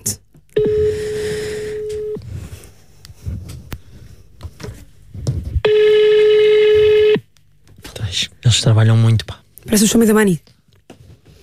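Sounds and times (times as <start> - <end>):
telephone ringing tone calling a home number: 0.6 - 2.2, 5.7 - 7.2
speech: 8.6 - 10.6.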